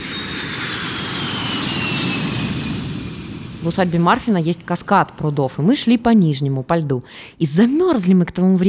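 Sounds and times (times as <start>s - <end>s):
low-flying airplane on landing approach: 0.0s - 6.0s
speech: 3.6s - 8.6s.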